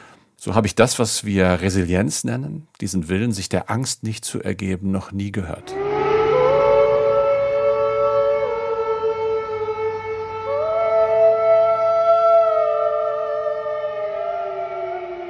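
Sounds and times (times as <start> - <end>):
speech: 0.4 - 5.8
air raid sirens wailing: 5.6 - 15.2.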